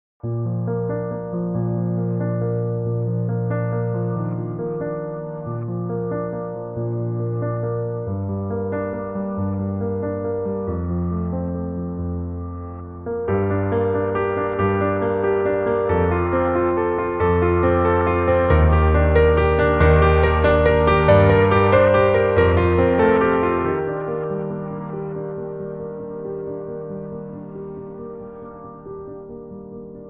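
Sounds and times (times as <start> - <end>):
short mood piano rhythm: 0.2 - 30.0.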